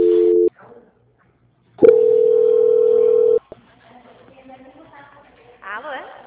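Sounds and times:
telephone tones during a call transfer: 0.0s - 0.5s, 1.8s - 3.4s.

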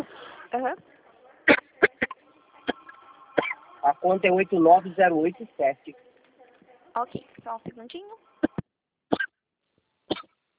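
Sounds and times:
speech: 0.5s - 1.6s, 3.8s - 6.1s, 7.0s - 8.3s
short dry coughs from a person with a lingering mild cough: 1.4s - 3.6s, 8.4s - 9.4s, 10.1s - 10.4s.

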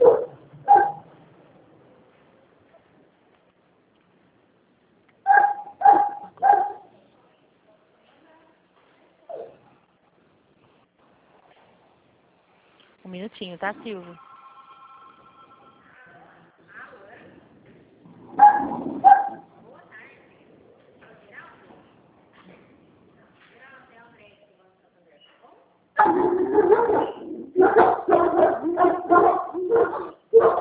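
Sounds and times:
dogs barking: 0.0s - 1.1s, 5.3s - 7.0s, 18.2s - 19.5s, 26.0s - 30.5s
speech: 13.1s - 14.3s.

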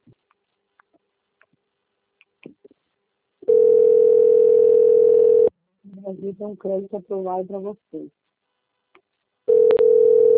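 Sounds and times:
telephone ringing tone on a call: 3.5s - 5.5s, 9.5s - 10.3s
speech: 6.2s - 8.3s.

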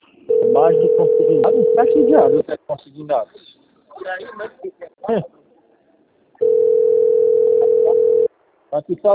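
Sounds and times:
steady single-pitched telephone tone for an incoming call: 0.3s - 2.4s, 6.4s - 8.3s
speech: 0.6s - 5.4s, 8.7s - 9.1s.

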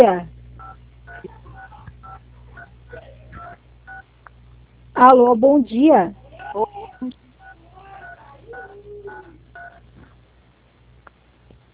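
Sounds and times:
speech: 0.0s - 0.3s, 5.0s - 7.2s
low hum: 0.0s - 11.7s
telephone keypad DTMF tones over a phone line: 7.0s - 9.8s.

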